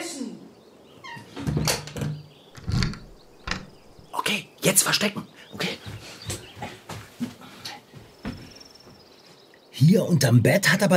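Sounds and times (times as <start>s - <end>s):
door creaking and swinging shut with a muffled thud: 1.0s - 4.1s
door lock clicking and rattling: 1.6s - 4.1s
speech: 4.3s - 5.8s, 9.8s - 10.9s.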